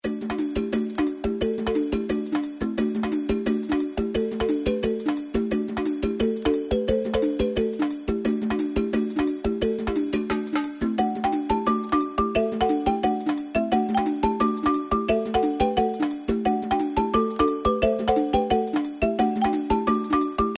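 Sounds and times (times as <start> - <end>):
turntable background music: 0.0 - 20.5.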